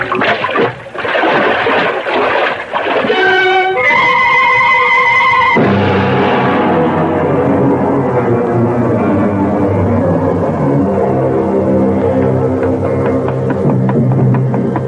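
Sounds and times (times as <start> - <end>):
man plunging into river water: 0.0 - 3.6
rushing river water: 0.0 - 14.8.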